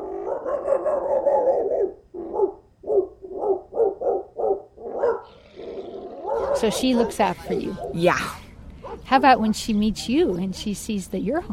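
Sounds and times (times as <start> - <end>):
big mastiff barking deep and loud: 0.0 - 8.0, 8.8 - 9.6
speech: 6.6 - 8.4, 9.1 - 11.5.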